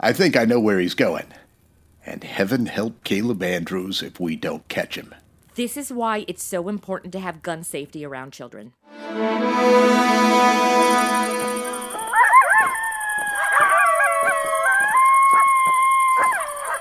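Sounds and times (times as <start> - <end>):
speech: 0.0 - 1.4, 2.0 - 11.2
several coyotes howling: 11.9 - 16.7.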